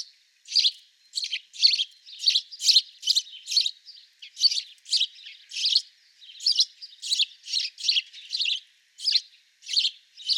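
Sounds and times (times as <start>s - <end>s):
house sparrow Passer domesticus chirping: 0.0s - 10.3s.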